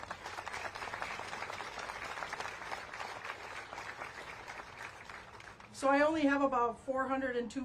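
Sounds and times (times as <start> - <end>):
crowd applause for guests: 0.0 - 5.7
speech: 5.8 - 7.6.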